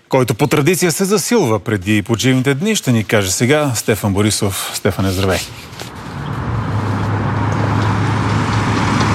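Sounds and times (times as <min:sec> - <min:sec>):
speech: 0:00.1 - 0:05.8
heavy motorway traffic engine and tyre noise: 0:05.0 - 0:09.1
low rumbling traffic hum: 0:05.5 - 0:09.1.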